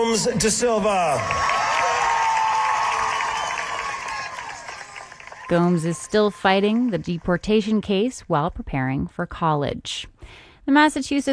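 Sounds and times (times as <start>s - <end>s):
speech: 0.0s - 1.6s, 5.5s - 11.3s
graduation crowd cheering with whoops and shouts: 0.0s - 7.8s.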